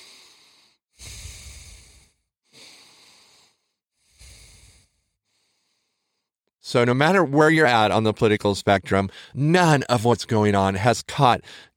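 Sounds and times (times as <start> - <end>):
people taking slow deep breaths together: 0.0 - 6.3
speech: 6.7 - 11.7.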